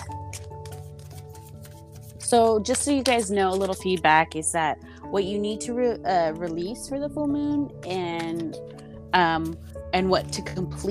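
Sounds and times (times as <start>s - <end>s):
deck of tarot cards being shuffled with papery riffles and slaps: 0.0s - 4.2s
speech: 2.3s - 10.9s.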